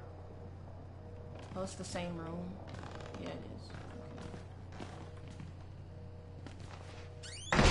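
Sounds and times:
low steady hum: 0:00.0 - 0:07.6
speech: 0:01.6 - 0:04.3
door slamming: 0:07.4 - 0:07.6.

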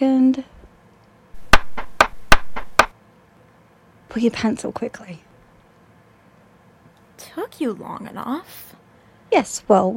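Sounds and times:
speech: 0:00.0 - 0:00.6, 0:04.2 - 0:05.3, 0:07.5 - 0:09.9
sharp knocks on a door: 0:01.4 - 0:02.9.

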